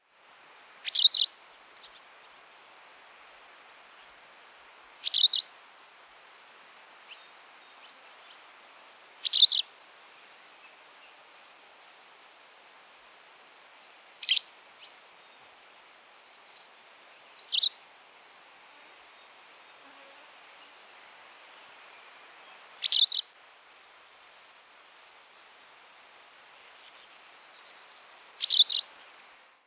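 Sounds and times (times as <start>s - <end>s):
Motacilla alba calling: 0.8s - 1.3s, 5.0s - 5.5s, 9.2s - 9.7s, 14.2s - 14.9s, 17.4s - 17.9s, 22.5s - 23.3s, 26.8s - 29.0s.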